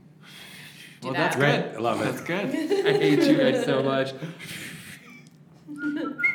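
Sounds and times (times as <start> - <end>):
faint hum of room noise: 0.0 - 6.3
speech: 1.0 - 4.6, 5.7 - 6.3
laughter: 1.9 - 6.3
person whistling short high notes: 5.7 - 6.3.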